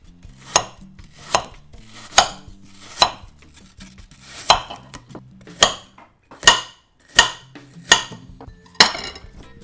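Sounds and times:
knife chopping an apple into small cubes on a board: 0.3 - 9.0.

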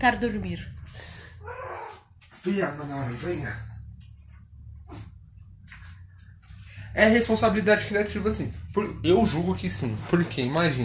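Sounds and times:
speech: 0.0 - 0.9, 2.4 - 3.7, 6.9 - 10.8
steady low hum: 0.0 - 10.8
female cat in heat yowling meows: 1.4 - 2.1.

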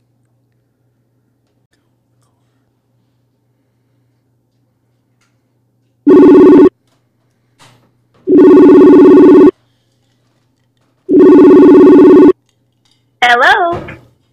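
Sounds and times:
person answering the telephone line: 6.1 - 6.7, 8.3 - 9.5, 11.1 - 12.3
telephone ringing on an outgoing call: 6.1 - 6.7, 8.3 - 9.5, 11.1 - 12.4.

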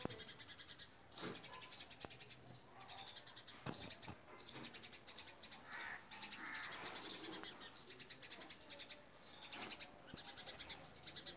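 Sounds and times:
sparrows chattering: 0.0 - 11.3
crows crying on seeing a cat: 5.6 - 7.2.

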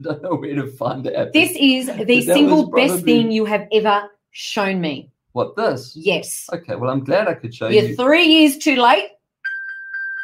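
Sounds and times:
laughter: 0.0 - 1.2, 1.9 - 3.3, 6.8 - 8.0
speech: 0.0 - 9.2
phone notification ping: 9.5 - 10.2.

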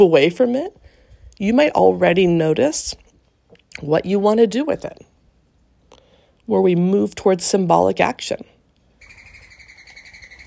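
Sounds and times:
speech: 0.0 - 3.0, 3.8 - 5.1, 6.5 - 8.6
doves calling at a nest: 9.0 - 10.4.

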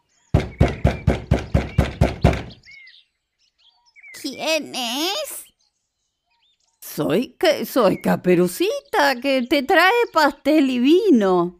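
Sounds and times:
faint bird chirps: 0.0 - 11.5
knocking on a wooden door: 0.3 - 2.6
speech: 4.3 - 5.4, 7.0 - 11.5.

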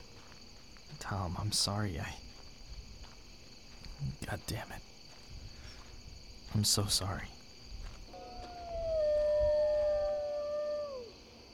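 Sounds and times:
speech: 1.0 - 2.2, 4.0 - 4.9, 6.5 - 7.4
coyote howling at night: 8.1 - 11.2.

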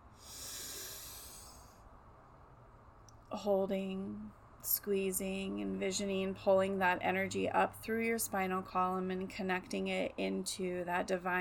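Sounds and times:
deep inhale through the nose during a breathwork exercise: 0.0 - 1.8
speech: 3.3 - 11.3.

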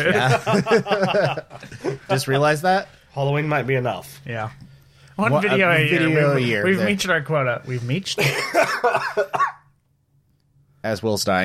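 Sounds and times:
laughter: 0.0 - 2.6, 8.2 - 9.4
speech: 0.0 - 4.6, 5.2 - 9.5, 10.8 - 11.4
harsh rough coughs: 8.2 - 9.7.

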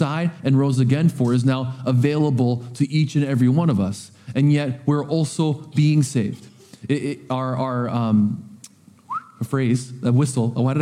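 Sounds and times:
speech: 0.0 - 8.5, 9.4 - 10.8
short rising whistle: 9.1 - 9.4.

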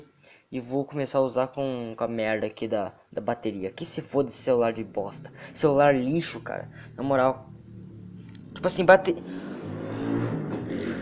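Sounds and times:
speech: 0.5 - 7.6, 8.6 - 9.5
motorcycle engine revving outside at night: 4.6 - 11.0.

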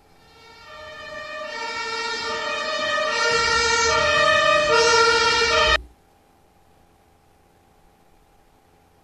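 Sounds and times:
German ambulance siren: 0.0 - 5.8.

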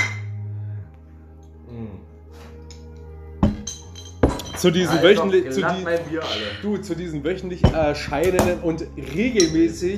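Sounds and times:
drinking glasses clinking in a toast: 0.0 - 0.3, 2.7 - 5.2, 9.3 - 9.8
speech: 4.6 - 9.9.

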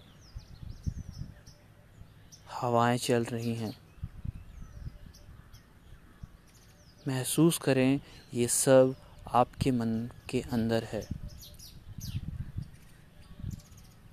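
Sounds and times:
birds chirping: 0.0 - 14.1
low outdoor rumbling: 0.2 - 2.3, 3.8 - 6.6, 9.0 - 14.1
speech: 2.5 - 3.8, 7.1 - 11.2.

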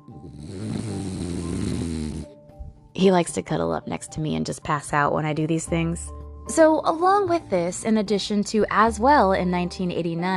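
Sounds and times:
pet snoring: 0.0 - 2.4
speech: 3.0 - 10.3.

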